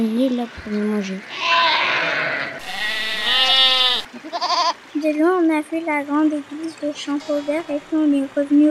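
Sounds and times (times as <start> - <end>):
speech: 0.0 - 8.6
sheep grazing on an island bleating: 1.2 - 4.8.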